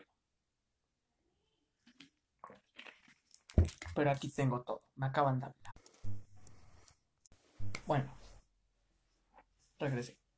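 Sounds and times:
person drinking water with wet gulps and swallows: 0:02.4 - 0:03.8
speech: 0:04.0 - 0:05.6, 0:07.9 - 0:08.2, 0:09.8 - 0:10.2.

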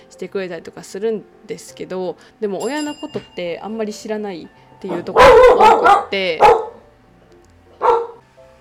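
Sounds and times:
speech: 0:00.1 - 0:06.6
dog barking at construction workers: 0:04.9 - 0:06.8, 0:07.8 - 0:08.2.

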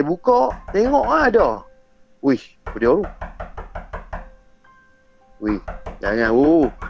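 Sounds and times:
speech: 0:00.0 - 0:03.4, 0:05.4 - 0:06.8
reenacted knocking on a door: 0:00.4 - 0:01.6, 0:02.6 - 0:04.3, 0:05.4 - 0:06.8.

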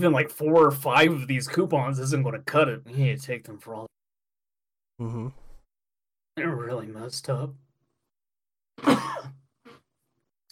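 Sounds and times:
speech: 0:00.0 - 0:04.0, 0:05.0 - 0:05.4, 0:06.4 - 0:07.6
person clearing throat with nacho chip fragments stuck in it: 0:08.8 - 0:09.8.

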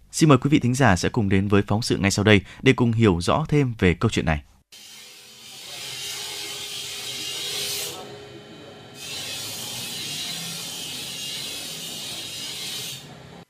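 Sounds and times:
speech: 0:00.1 - 0:04.9
harsh rasping metal grinding in a blacksmith forge workshop in Đa Sĩ village: 0:04.7 - 0:13.4.

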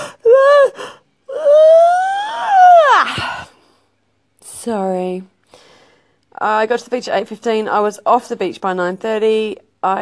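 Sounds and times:
person yawning: 0:00.0 - 0:03.6
speech: 0:04.7 - 0:05.3, 0:06.4 - 0:10.0.

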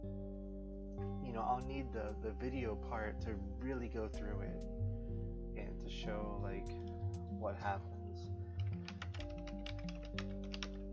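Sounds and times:
steady low electronic hum: 0:00.0 - 0:10.9
speech: 0:01.4 - 0:04.8, 0:05.6 - 0:08.4
typing on a computer keyboard while writing a chat message: 0:08.6 - 0:10.9.

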